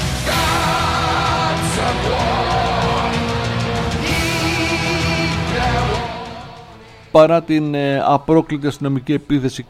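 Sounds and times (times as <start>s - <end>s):
protesters shouting slogans outside courthouse: 0.2s - 6.7s
speech: 7.1s - 9.6s.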